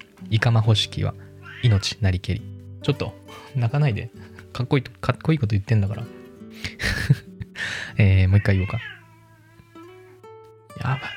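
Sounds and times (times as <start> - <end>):
speech: 0.3 - 6.7, 8.0 - 8.9, 10.8 - 11.1
agitated cat meowing: 1.4 - 2.0, 8.3 - 10.2, 10.8 - 11.1
laughter: 6.6 - 7.5.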